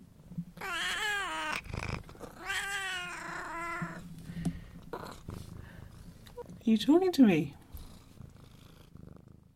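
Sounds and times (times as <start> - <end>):
cat meowing: 0.6 - 4.0
speech: 6.7 - 7.6.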